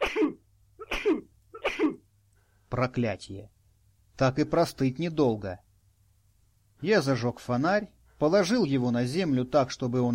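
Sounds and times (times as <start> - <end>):
person sneezing: 0.0 - 2.1
speech: 2.8 - 3.6, 4.2 - 5.7, 6.8 - 10.1.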